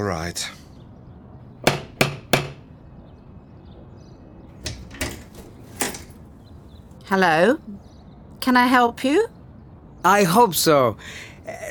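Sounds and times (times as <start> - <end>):
speech: 0.0 - 0.6, 7.1 - 9.4, 10.0 - 11.6
knocking on a door: 1.6 - 2.6.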